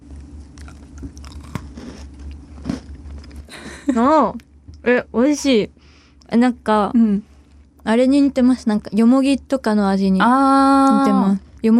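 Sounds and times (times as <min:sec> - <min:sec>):
crunching and chewing flower-shaped silkworm cookie: 0:00.0 - 0:03.5
speech: 0:03.9 - 0:11.7.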